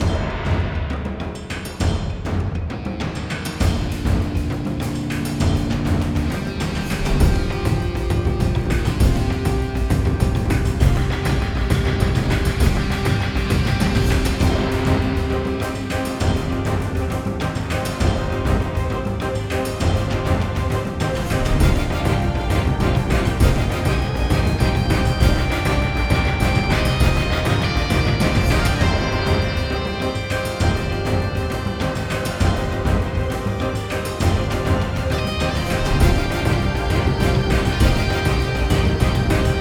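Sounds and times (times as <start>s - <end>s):
epic action drums: 0.0s - 39.5s.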